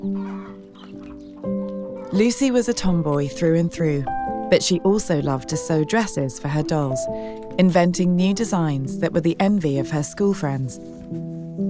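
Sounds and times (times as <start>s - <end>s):
chickens clucking: 0.0s - 2.4s
speech: 2.1s - 11.2s.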